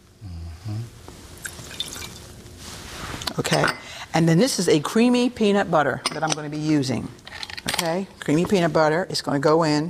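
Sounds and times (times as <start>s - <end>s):
water pouring into a cooking pot on a stove: 1.4s - 2.3s
speech: 3.4s - 9.8s.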